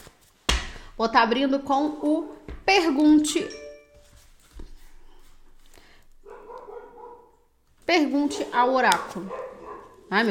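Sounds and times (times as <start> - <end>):
speech: 1.0 - 3.6, 7.9 - 9.4
dogs barking and yipping excitedly: 6.2 - 10.1.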